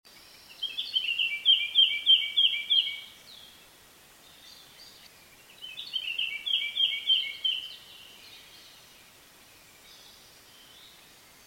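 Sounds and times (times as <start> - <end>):
Eurasian blackcap singing: 0.5 - 3.5, 4.3 - 8.8.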